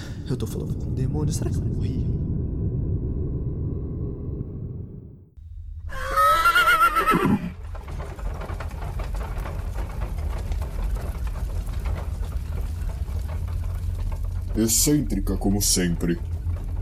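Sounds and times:
steady low rumble: 0:00.0 - 0:06.5, 0:07.4 - 0:16.8
speech: 0:00.3 - 0:02.3, 0:14.6 - 0:16.3
horses pulling a carriage whinnying: 0:05.9 - 0:07.6.

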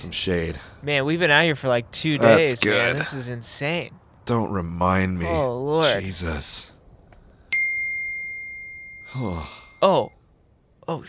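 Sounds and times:
speech: 0:00.0 - 0:06.7, 0:09.1 - 0:10.2, 0:10.9 - 0:11.0
phone notification ding: 0:07.5 - 0:09.2.

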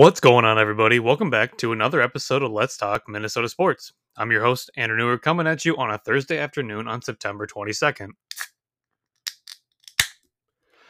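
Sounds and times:
speech: 0:00.0 - 0:08.4
can of beer being cracked open: 0:09.2 - 0:10.2.

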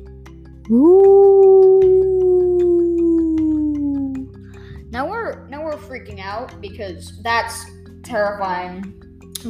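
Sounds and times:
speech: 0:00.7 - 0:01.4, 0:06.0 - 0:09.4
young coyote howling: 0:00.7 - 0:04.4.

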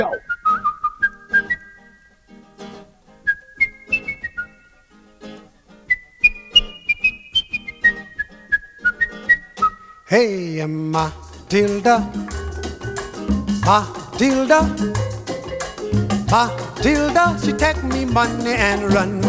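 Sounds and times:
bright whistled calypso melody: 0:00.0 - 0:02.2, 0:03.2 - 0:04.9, 0:05.8 - 0:10.1, 0:12.2 - 0:13.8, 0:14.6 - 0:19.2
plucked calypso rhythm: 0:00.0 - 0:19.2
speech: 0:10.1 - 0:12.3, 0:13.3 - 0:15.1, 0:15.9 - 0:19.2
steady bouncy calypso percussion: 0:10.9 - 0:19.2.

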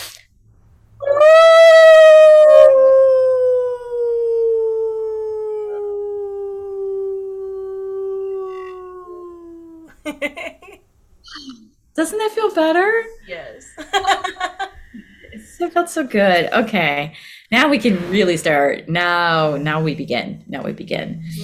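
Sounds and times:
person imitating a wolf howling at the moon: 0:01.0 - 0:10.0
laughter: 0:09.9 - 0:10.8, 0:13.8 - 0:15.1
speech: 0:12.0 - 0:14.6, 0:15.6 - 0:21.4.

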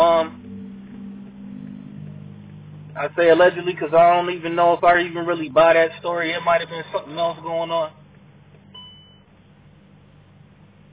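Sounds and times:
low car engine and cabin hum: 0:00.0 - 0:10.9
speech: 0:03.0 - 0:08.0
car fuel cap warning beep: 0:08.7 - 0:09.3.

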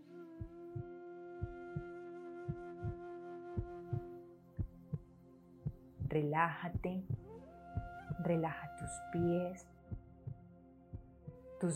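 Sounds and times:
slow heartbeat in paired lub-dub beats: 0:00.4 - 0:01.9, 0:02.5 - 0:03.0, 0:03.6 - 0:09.3, 0:09.9 - 0:11.7
speech: 0:06.1 - 0:07.2, 0:08.2 - 0:09.7, 0:11.6 - 0:11.7.

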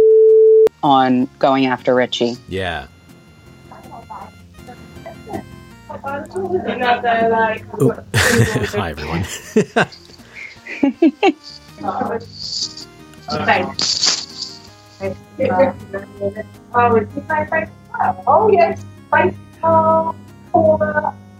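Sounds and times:
speech: 0:00.8 - 0:03.0, 0:05.3 - 0:10.0, 0:10.8 - 0:12.7, 0:13.3 - 0:14.1, 0:15.0 - 0:21.2
laughter: 0:02.5 - 0:02.9, 0:07.3 - 0:15.2
steady electrical buzz on a phone line: 0:02.8 - 0:07.7, 0:11.4 - 0:21.3.

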